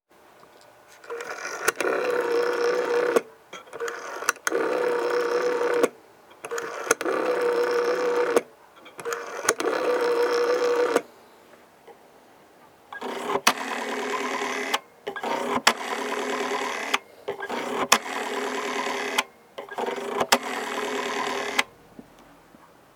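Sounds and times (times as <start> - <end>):
dial sound: 1.0 - 11.1, 12.9 - 21.8.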